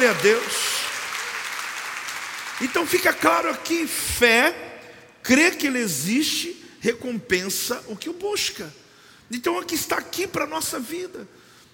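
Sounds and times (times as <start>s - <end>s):
speech: 0.0s - 0.7s, 2.6s - 11.4s
audience applauding: 0.0s - 3.5s.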